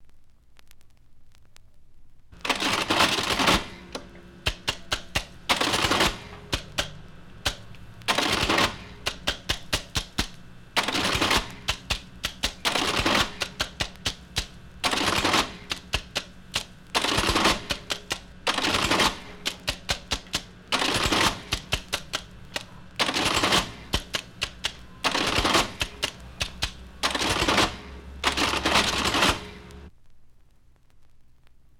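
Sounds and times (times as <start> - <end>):
National Cash Register electric adding machine: 2.4 - 29.9.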